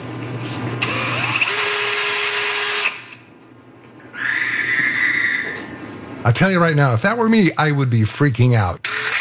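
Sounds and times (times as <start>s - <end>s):
power drill whirring: 0.8s - 3.2s, 8.8s - 9.1s
high whinnying squeal from a power drill: 4.0s - 6.0s
speech: 6.3s - 8.8s.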